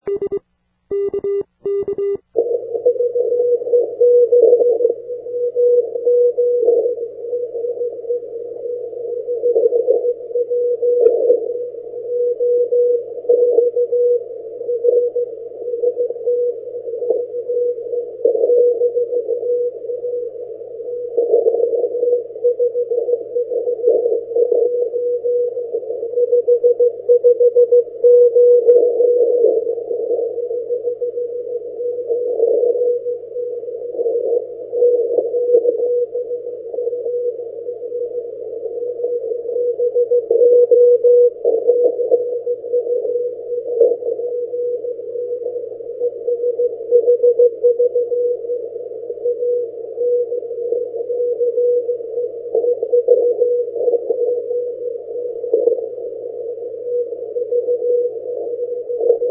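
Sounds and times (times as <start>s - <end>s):
80m CW morse code signal from South Africa: 0.0s - 59.2s.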